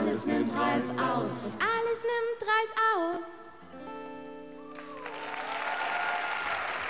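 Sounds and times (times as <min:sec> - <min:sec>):
speech: 0:00.1 - 0:04.1
audience applause: 0:04.7 - 0:06.8.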